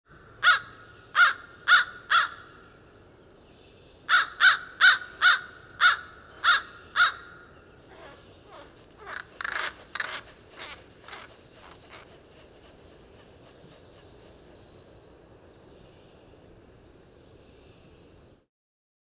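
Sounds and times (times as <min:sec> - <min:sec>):
American crow cawing: 0:00.4 - 0:02.4, 0:04.1 - 0:12.1.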